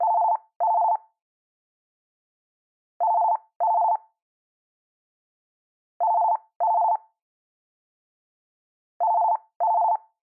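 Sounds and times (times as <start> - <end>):
telephone ringtone: 0.0 - 1.0, 3.0 - 4.0, 6.0 - 7.1, 9.0 - 10.1.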